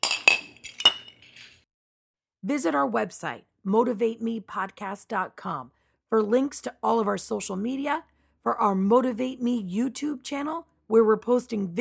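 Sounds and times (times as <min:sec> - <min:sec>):
glasses clinking in a toast in Kansas City: 0:00.0 - 0:01.6
speech: 0:02.4 - 0:11.7.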